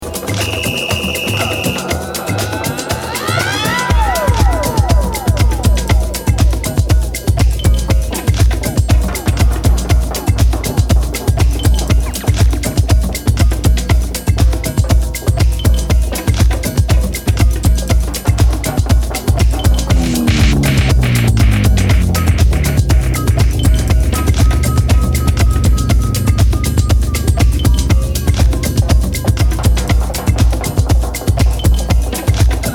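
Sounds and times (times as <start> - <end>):
DJ drum beat: 0.0 - 32.7.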